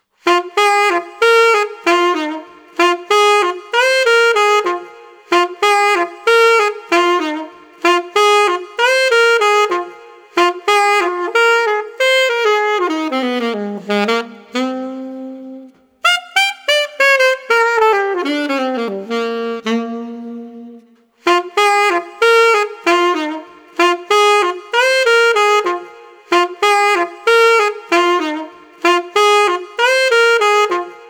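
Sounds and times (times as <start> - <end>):
street saxophone playing groovy soul: 0.2 - 31.0.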